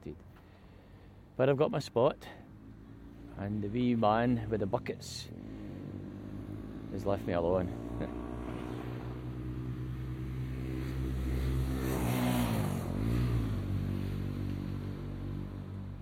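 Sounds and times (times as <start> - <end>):
speech: 1.4 - 2.4, 3.4 - 5.5, 6.9 - 8.2
motorbike engine revving past: 5.3 - 16.0.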